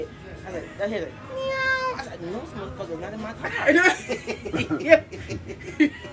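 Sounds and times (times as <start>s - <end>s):
speech: 0.0s - 1.6s, 2.2s - 6.1s
person imitating a cat with a drawn-out nasal meow: 1.3s - 2.1s
laughter: 3.5s - 6.1s.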